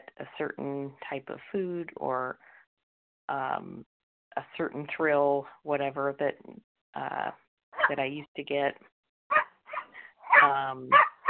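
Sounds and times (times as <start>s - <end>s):
speech: 0.2s - 2.6s, 3.3s - 8.9s, 10.4s - 11.1s
dogs barking: 7.8s - 8.0s, 9.3s - 11.2s.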